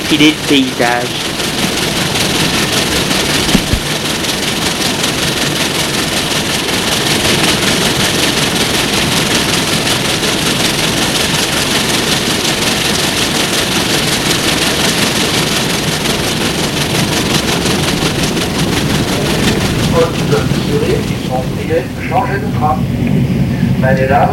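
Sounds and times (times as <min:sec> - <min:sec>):
train engine idling at a station: 0:00.0 - 0:24.3
speech: 0:00.1 - 0:01.4, 0:23.8 - 0:24.3
knock: 0:03.5 - 0:03.8.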